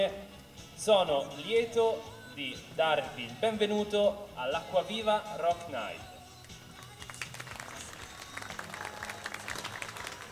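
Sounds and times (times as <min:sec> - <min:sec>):
speech: 0:00.0 - 0:06.1
crowd applauding at a rock night event: 0:06.8 - 0:10.2.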